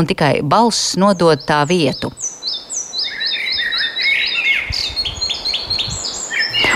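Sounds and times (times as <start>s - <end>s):
speech: 0.0s - 2.6s
soft hiss: 0.0s - 6.7s
faint bird calls: 1.4s - 6.7s.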